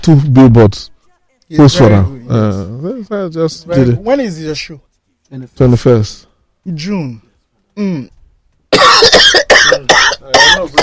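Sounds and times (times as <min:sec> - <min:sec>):
speech: 0:00.0 - 0:00.9, 0:01.5 - 0:07.2, 0:07.8 - 0:08.2, 0:08.8 - 0:10.8
harsh coughing caused by traffic: 0:08.7 - 0:10.8.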